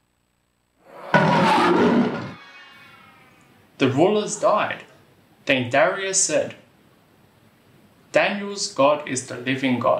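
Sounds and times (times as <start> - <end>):
lion roaring: 0.9 - 2.6
speech: 3.8 - 4.9, 5.5 - 6.6, 8.1 - 9.9.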